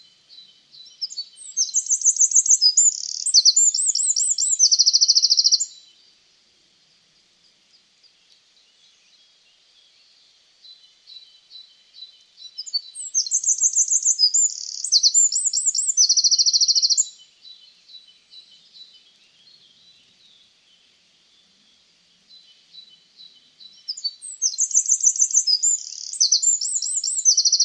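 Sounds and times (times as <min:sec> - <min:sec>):
bird song with high rapid twittering phrases: 0:00.0 - 0:06.2, 0:07.4 - 0:27.6.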